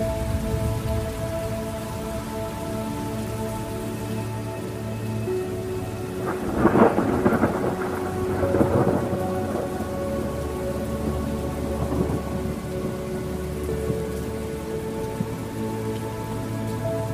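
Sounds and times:
faint thunder rumble: 0:00.0 - 0:17.1
soft sustained musical tones: 0:00.0 - 0:17.1
steady rain: 0:00.0 - 0:17.1
thunder crack: 0:06.2 - 0:09.6.

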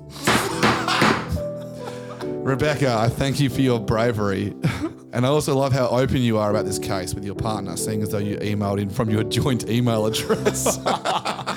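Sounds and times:
gavel banging: 0:00.2 - 0:01.5
laughter: 0:00.2 - 0:02.4, 0:10.2 - 0:11.5
speech: 0:02.4 - 0:11.5.

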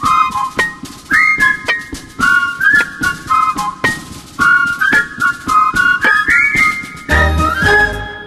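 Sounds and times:
bright whistled melody in a show bumper jingle: 0:00.0 - 0:08.2.

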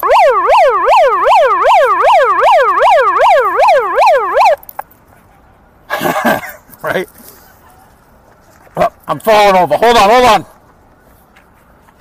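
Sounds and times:
emergency vehicle siren wailing in Boston: 0:00.0 - 0:04.7
speech: 0:09.1 - 0:10.5.

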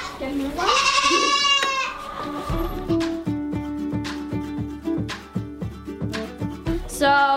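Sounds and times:
goat bleating: 0:00.0 - 0:02.6
speech: 0:00.2 - 0:00.8
rhythmic thumping: 0:02.3 - 0:07.0.

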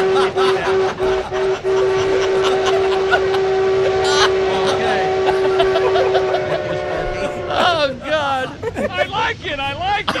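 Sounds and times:
steam locomotive whistle blowing: 0:00.0 - 0:07.7
steam locomotive chuffing: 0:00.0 - 0:08.6
laughter: 0:00.0 - 0:10.1
rumbling train noise: 0:00.0 - 0:10.1.

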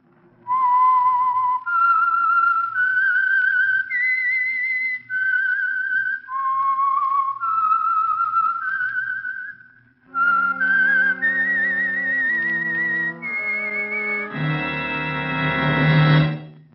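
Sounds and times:
person whistling a melody of sustained gliding notes: 0:00.5 - 0:15.4
orchestral section with brass-like chords: 0:10.2 - 0:16.6.

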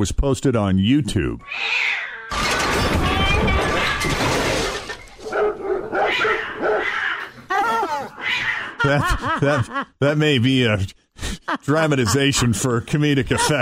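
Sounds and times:
speech: 0:00.0 - 0:04.4, 0:08.8 - 0:13.6
cat yowling: 0:01.4 - 0:04.1, 0:05.9 - 0:08.8
dog and cat fighting with snarling, hissing and scuffling: 0:01.5 - 0:08.8
dog giving sharp barks: 0:05.2 - 0:07.2
laughter: 0:07.3 - 0:13.6.

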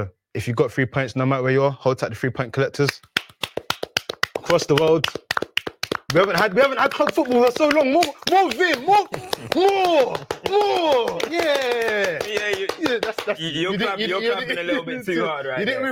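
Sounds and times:
speech: 0:00.0 - 0:03.1, 0:04.5 - 0:05.2, 0:06.1 - 0:15.9
sharp hard hand claps: 0:02.8 - 0:13.5
laughter: 0:06.3 - 0:15.4.

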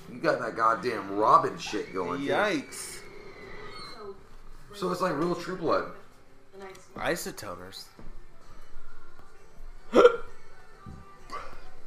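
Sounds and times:
speech: 0:00.2 - 0:03.0, 0:04.7 - 0:06.0, 0:06.6 - 0:08.0
person hiccuping: 0:09.9 - 0:10.4.

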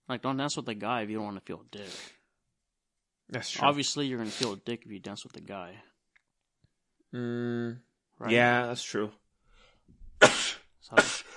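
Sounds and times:
speech: 0:00.1 - 0:02.2, 0:03.3 - 0:05.9, 0:07.1 - 0:09.2, 0:10.2 - 0:11.3
person sneezing: 0:10.2 - 0:11.3.

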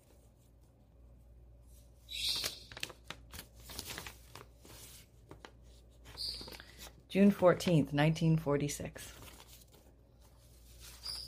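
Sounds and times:
old paper letter being handled and unfolded, crinkling: 0:02.4 - 0:07.0, 0:09.0 - 0:11.2
speech: 0:07.1 - 0:09.2.

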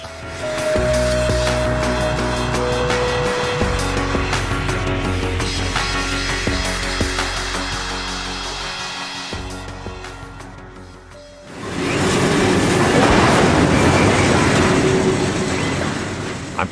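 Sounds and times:
train rumbling on tracks: 0:00.0 - 0:16.7
train metallic clanking and rattles: 0:11.6 - 0:16.7.

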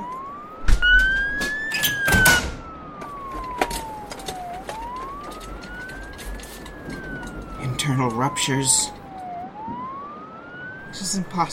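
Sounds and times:
ambulance siren wailing: 0:00.0 - 0:11.5
vehicle doors thudding and clattering: 0:00.6 - 0:08.3
speech: 0:08.0 - 0:09.0, 0:11.1 - 0:11.5.

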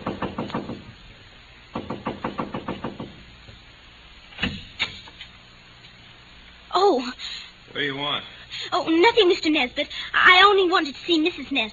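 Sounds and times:
rapid knocks on a house door: 0:00.0 - 0:00.9, 0:01.7 - 0:03.2
speech: 0:07.8 - 0:11.7.

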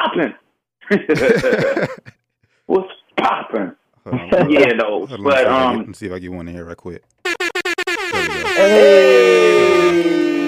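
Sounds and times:
speech: 0:00.2 - 0:02.1, 0:04.4 - 0:07.3, 0:08.2 - 0:09.1
laughter: 0:00.9 - 0:02.2
loud brassy air horn blast sliding slightly downward in pitch: 0:07.2 - 0:10.4.

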